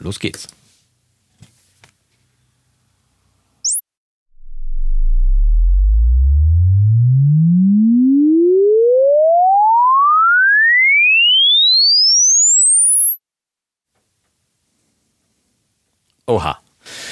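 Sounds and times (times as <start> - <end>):
speech: 0.0 - 0.6, 16.3 - 16.6
brief high chirp: 3.7 - 4.0
loud steady sine sweep rising from deep bass to piercing high pitch: 3.7 - 13.9.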